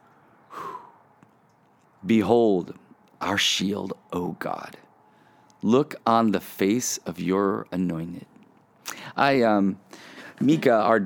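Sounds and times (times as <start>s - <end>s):
deep breath during a pause in a spoken prayer: 0.1s - 1.1s, 5.0s - 5.6s, 9.9s - 10.4s
speech: 2.0s - 4.8s, 5.6s - 8.3s, 9.1s - 11.0s.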